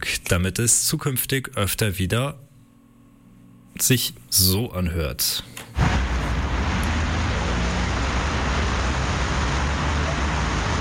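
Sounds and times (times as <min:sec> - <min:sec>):
speech: 0:00.3 - 0:02.5, 0:03.8 - 0:05.7
dense road traffic roar on a busy main road: 0:05.8 - 0:10.7.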